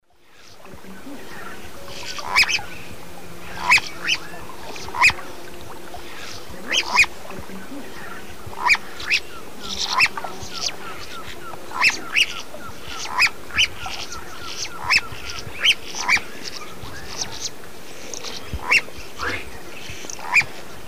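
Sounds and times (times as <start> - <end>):
Hydropsalis climacocerca alarm calls in the eastern lowlands of South America: 1.3 - 2.8, 3.5 - 5.2, 6.7 - 7.1, 8.0 - 19.4, 20.0 - 20.5.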